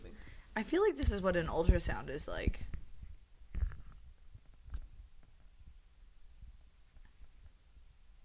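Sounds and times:
quiet hum: 0:00.0 - 0:08.2
speech: 0:00.6 - 0:02.8
person's stomach growling and gurgling: 0:03.5 - 0:04.1.

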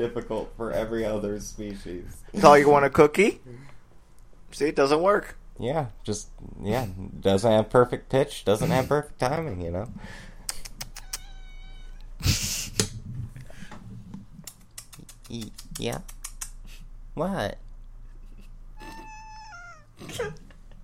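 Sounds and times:
speech: 0:00.0 - 0:03.7, 0:04.5 - 0:10.3, 0:15.3 - 0:16.2, 0:17.2 - 0:17.6
cat meowing: 0:10.8 - 0:12.2, 0:18.8 - 0:20.1.

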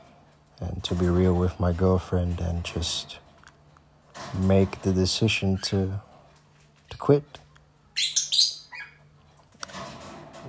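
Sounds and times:
speech: 0:00.6 - 0:03.2, 0:04.3 - 0:06.1, 0:06.9 - 0:07.4
pet birds chirping indoors: 0:07.9 - 0:09.2.

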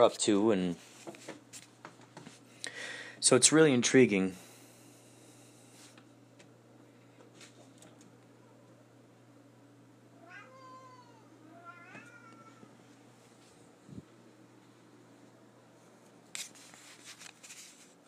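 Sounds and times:
speech: 0:00.0 - 0:00.9, 0:03.2 - 0:04.4
cat meowing: 0:10.1 - 0:12.8.

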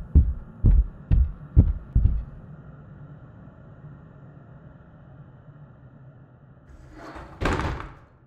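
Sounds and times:
loud heavy knocking on a front door: 0:00.0 - 0:02.4
low quiet hum: 0:00.0 - 0:08.2.

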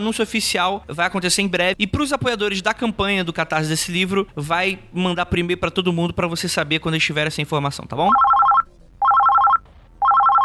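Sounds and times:
speech: 0:00.0 - 0:08.3
telephone ringing with an incoming call: 0:08.1 - 0:10.4.

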